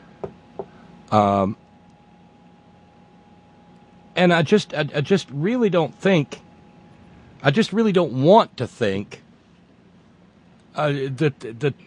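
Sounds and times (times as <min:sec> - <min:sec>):
light knocking on wood: 0:00.2 - 0:00.7
speech: 0:01.1 - 0:01.6, 0:04.2 - 0:06.4, 0:07.4 - 0:09.2, 0:10.8 - 0:11.8.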